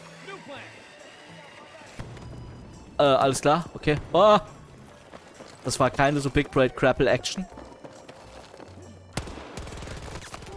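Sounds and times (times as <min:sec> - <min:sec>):
first-person shooter video game noise: 0:00.0 - 0:10.5
speech: 0:03.0 - 0:04.6, 0:05.6 - 0:07.6
single gunshot fired from the hip in a first-person shooter video game: 0:09.2 - 0:10.5.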